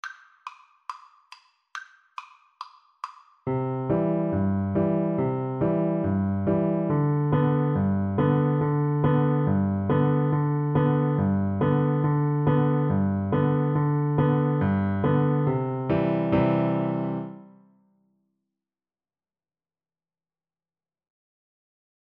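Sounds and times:
piano duet: 3.5 - 17.6.

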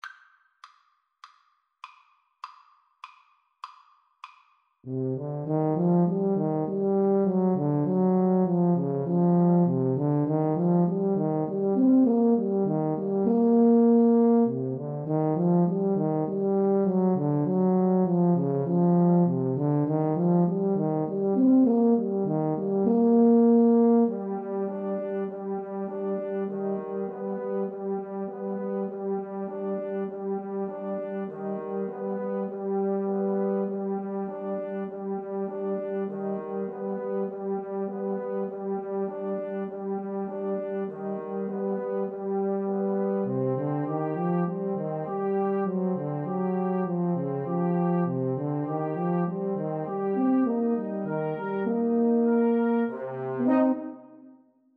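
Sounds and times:
two euphoniums and tuba playing: 4.9 - 54.2.

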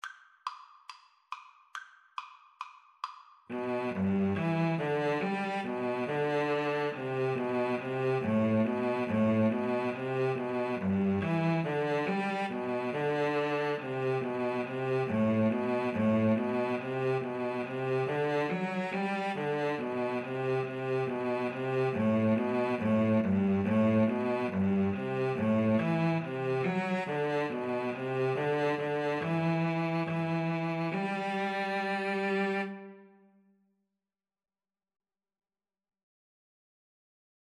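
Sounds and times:
violin and cello duet: 3.5 - 33.1.

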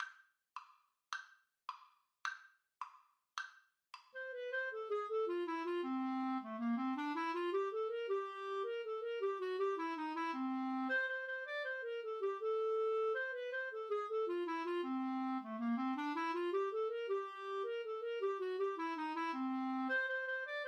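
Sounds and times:
clarinet duet: 4.2 - 20.6.

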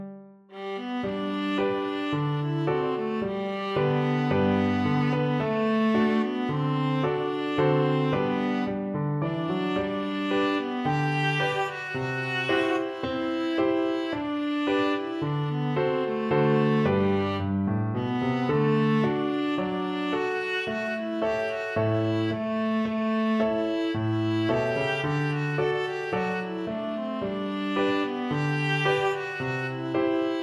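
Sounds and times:
viola: 0.5 - 30.4.

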